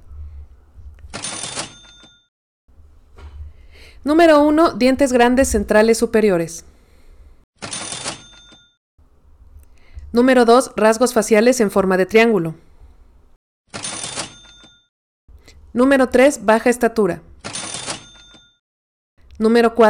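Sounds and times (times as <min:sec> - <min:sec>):
cash register mechanical clatter: 0:01.1 - 0:02.2, 0:07.6 - 0:08.7, 0:13.7 - 0:14.8, 0:17.4 - 0:18.6
speech: 0:04.0 - 0:06.7, 0:10.2 - 0:12.7, 0:15.8 - 0:17.3, 0:19.4 - 0:19.8.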